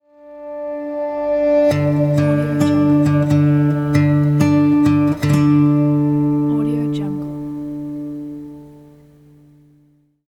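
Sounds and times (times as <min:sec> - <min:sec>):
acoustic guitar intro: 0:00.0 - 0:10.2.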